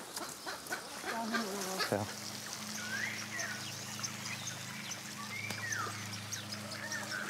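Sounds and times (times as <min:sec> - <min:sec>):
weakened lame-footed bird giving short hoarse honking calls while being caught: 0:00.2 - 0:07.2
steady low hum: 0:01.6 - 0:07.2.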